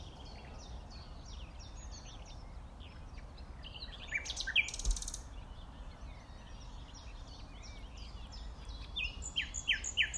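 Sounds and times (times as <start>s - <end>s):
common nightingale Luscinia megarhynchos song: 0.0s - 10.1s.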